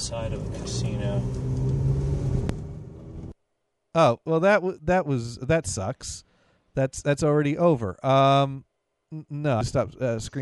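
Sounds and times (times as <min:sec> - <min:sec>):
car engine rumble inside a moving car: 0:00.0 - 0:03.4
speech: 0:00.1 - 0:01.6, 0:04.0 - 0:10.3.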